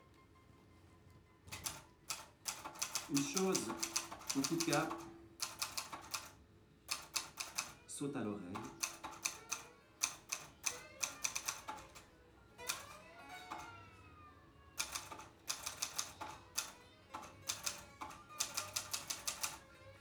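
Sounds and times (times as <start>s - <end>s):
typewriter keys clacking: 1.5s - 6.3s, 6.9s - 7.8s, 8.6s - 13.8s, 14.8s - 19.6s
typewriter carriage sliding and scraping: 2.5s - 6.3s, 8.6s - 12.0s, 12.6s - 13.8s, 14.8s - 19.6s
speech: 3.1s - 5.1s, 8.0s - 8.9s.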